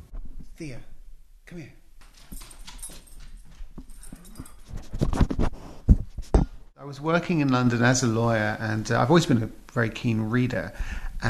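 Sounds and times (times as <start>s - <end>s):
speech: 0.6s - 0.9s, 1.5s - 2.4s, 6.8s - 11.2s
dog scratching at home: 2.0s - 5.6s
rapid scuffing and rustling: 2.0s - 6.7s.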